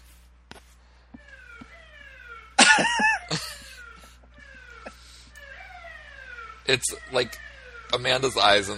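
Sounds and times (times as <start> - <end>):
faint siren wailing outside: 0.8 - 8.7
loud cough-like burst: 2.6 - 3.5
laughter: 2.6 - 3.9
speech: 2.8 - 3.1, 6.7 - 8.7.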